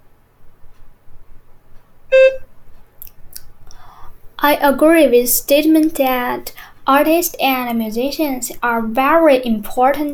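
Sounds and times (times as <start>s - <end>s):
short electronic beep signaling start: 2.1s - 2.4s
speech: 4.4s - 10.1s.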